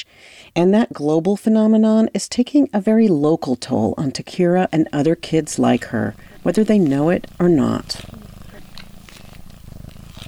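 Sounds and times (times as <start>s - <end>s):
speech: 0.0s - 8.2s
cat purring while being snuggled: 0.0s - 10.2s
soft voices: 2.9s - 9.5s
faint rustling: 2.9s - 10.2s.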